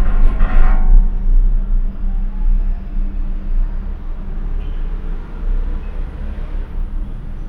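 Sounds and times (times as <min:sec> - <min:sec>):
cable car gondola rattling clatter: 0:00.0 - 0:01.6
cable car gondola moving above the city: 0:00.0 - 0:07.4.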